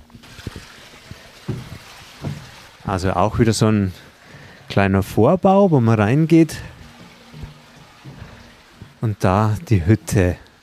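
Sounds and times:
Geiselbach stream trickling beneath a themed sleeping hut at a wilderness camp: 0.0s - 10.6s
low thumps: 0.5s - 2.8s, 4.1s - 10.1s
speech: 2.9s - 4.1s, 4.8s - 6.7s, 9.0s - 10.4s.

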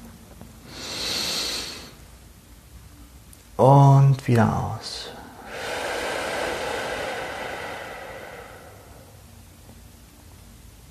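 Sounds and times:
slow deep inhalation: 0.7s - 2.0s, 5.1s - 9.4s
speech: 3.6s - 5.1s.

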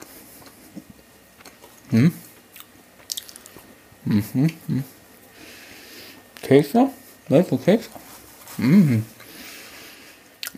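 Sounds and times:
biting and chewing a homemade biscuit: 0.0s - 4.6s
speech: 1.9s - 2.3s, 4.1s - 5.0s, 6.5s - 8.0s, 8.6s - 9.1s.

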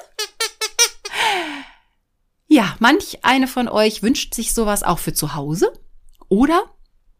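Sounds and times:
squeaky disgust sound effect: 0.0s - 1.1s
speech: 2.6s - 6.8s.

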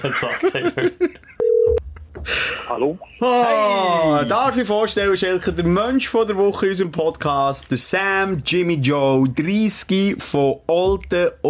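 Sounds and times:
people chuckling: 0.0s - 1.4s
speech: 0.0s - 11.4s
telephone ringing tone: 1.4s - 1.8s.

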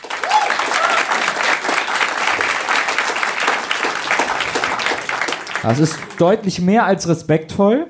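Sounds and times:
crowd applauding: 0.0s - 6.7s
faint whistles and cheers: 0.2s - 1.2s
speech: 5.6s - 7.8s.

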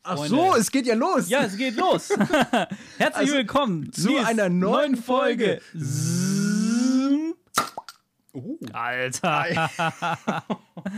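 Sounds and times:
speech: 0.1s - 6.2s, 8.4s - 10.9s
laughter: 1.6s - 3.2s, 9.2s - 10.9s
cork popping out of a bottle: 7.5s - 8.1s.

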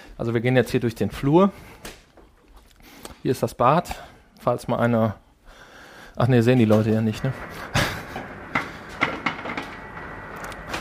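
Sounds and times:
speech: 0.2s - 1.9s, 3.2s - 5.2s, 6.2s - 7.6s
ice maker steady mechanical hum: 7.0s - 10.8s.

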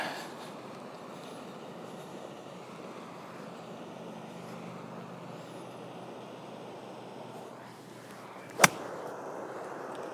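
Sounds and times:
steady outdoor hum: 0.0s - 10.1s
golf club striking the ball from high grass: 8.5s - 8.9s.

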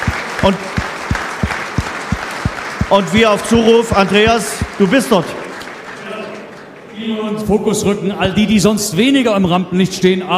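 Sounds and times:
thumping beats: 0.0s - 4.9s, 8.2s - 8.7s
crowd applauding the behind-the-scenes team at a promotion celebration in a stadium: 0.0s - 7.5s
speech: 0.4s - 0.8s, 2.9s - 5.4s, 7.0s - 10.3s.

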